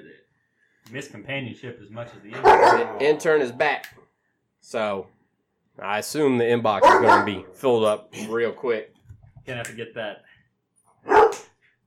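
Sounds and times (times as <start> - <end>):
speech: 0.9 - 4.0, 4.6 - 5.2, 5.8 - 10.3
dog barking: 2.4 - 3.2, 6.8 - 7.5, 11.0 - 11.6.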